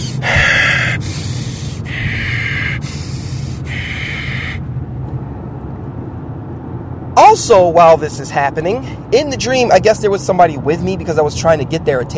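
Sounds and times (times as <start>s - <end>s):
person imitating stifled heavy breathing: 0.0s - 4.7s
speech: 7.4s - 12.1s.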